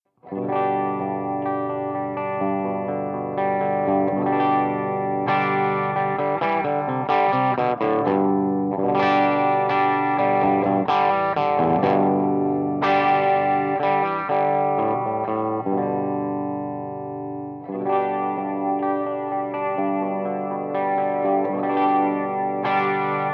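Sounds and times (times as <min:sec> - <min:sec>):
Les Paul electric guitar effects through a G12H speaker: 0:00.2 - 0:23.3.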